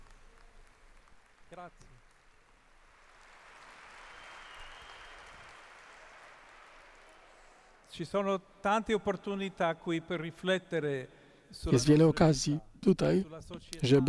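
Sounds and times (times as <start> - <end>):
large crowd applauding in a building: 0.0 - 7.9
speech: 1.6 - 2.1, 7.9 - 14.0.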